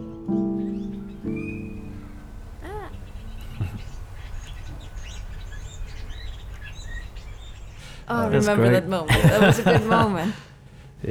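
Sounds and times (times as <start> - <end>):
scatter of smaller bird tweets: 0.0 - 8.1
loud harsh honking cry of broody birds: 0.0 - 8.5
broody birds chirping outdoors in Reykjavik, Iceland: 0.0 - 10.5
constant hum: 0.0 - 11.0
laughter: 1.3 - 5.0, 8.0 - 10.5
speech: 8.1 - 11.0.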